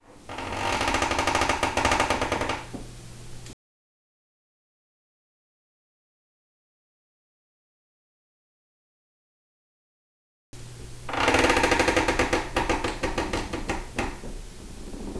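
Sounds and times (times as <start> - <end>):
wood creaking: 0.0 - 2.9, 11.1 - 15.1.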